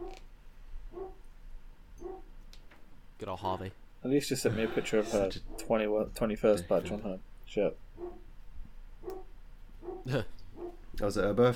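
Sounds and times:
low hum: 0:00.0 - 0:11.5
dog barking: 0:00.9 - 0:01.2, 0:02.0 - 0:02.3, 0:08.0 - 0:08.3, 0:09.0 - 0:10.8
speech: 0:03.2 - 0:08.3, 0:10.0 - 0:10.4, 0:11.0 - 0:11.5
laughter: 0:04.4 - 0:05.4.

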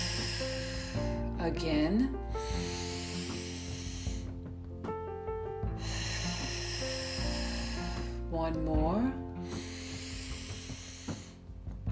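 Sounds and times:
deep breath exhaled through the nose during a guided breathing exercise: 0:00.0 - 0:01.4, 0:02.2 - 0:04.5, 0:05.6 - 0:08.3, 0:09.4 - 0:11.6
music: 0:00.0 - 0:11.9
speech: 0:01.4 - 0:02.3, 0:08.5 - 0:09.2.

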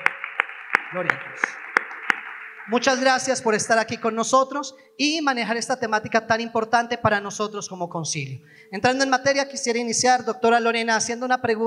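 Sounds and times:
small group clapping: 0:00.0 - 0:03.8
speech: 0:00.9 - 0:01.6, 0:02.6 - 0:11.6.

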